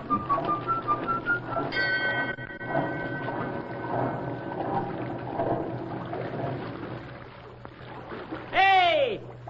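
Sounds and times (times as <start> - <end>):
quick rising flute-like notes: 0.0 - 3.4
low rumble: 0.0 - 8.0
steady wash of churning water: 0.0 - 9.4.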